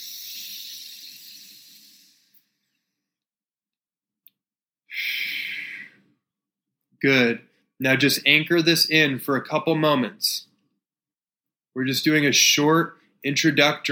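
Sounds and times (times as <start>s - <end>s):
deep breathing during a guided meditation: 0.0s - 3.1s, 4.9s - 6.1s
speech: 7.0s - 10.5s, 11.8s - 13.9s.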